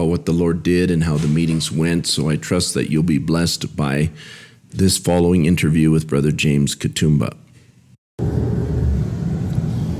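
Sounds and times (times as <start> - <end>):
speech: 0.2 - 7.4
vehicle in motion heard from inside during a road journey in Uganda: 8.2 - 9.9.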